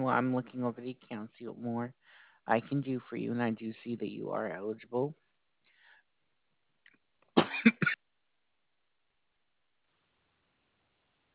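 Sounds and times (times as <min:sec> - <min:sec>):
speech: 0:00.0 - 0:05.2
harsh coughing: 0:07.4 - 0:08.0.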